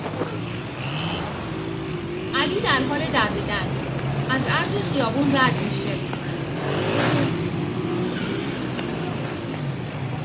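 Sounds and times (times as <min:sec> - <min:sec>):
motorcycle engine roaring as the bike sets off on a street: 0:00.0 - 0:10.2
speech: 0:02.5 - 0:07.0.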